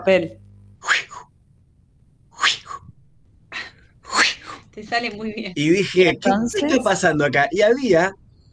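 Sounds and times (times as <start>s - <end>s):
speech: 0.0s - 0.4s, 4.8s - 8.2s
person imitating swish of fly-fishing line cast at a lake: 0.8s - 1.3s, 2.4s - 2.9s, 3.6s - 4.6s.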